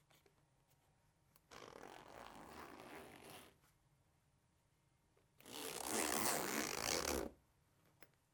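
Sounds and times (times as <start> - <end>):
zipper fastener: 1.5 - 3.6, 5.4 - 7.4.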